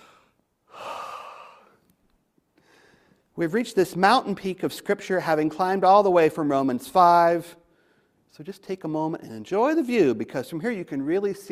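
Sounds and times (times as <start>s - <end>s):
person taking one deep slow breath: 0.0s - 1.8s, 2.6s - 3.3s
speech: 3.4s - 7.6s, 8.3s - 11.5s.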